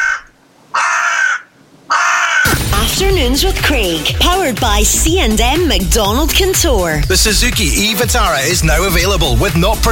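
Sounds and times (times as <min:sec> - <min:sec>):
crow cawing: 0:00.0 - 0:02.5
speech: 0:03.0 - 0:09.9.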